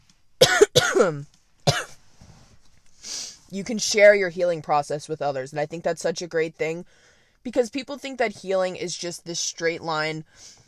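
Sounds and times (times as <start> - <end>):
harsh coughs: 0.4 - 2.0
speech: 1.0 - 1.8, 3.5 - 10.6.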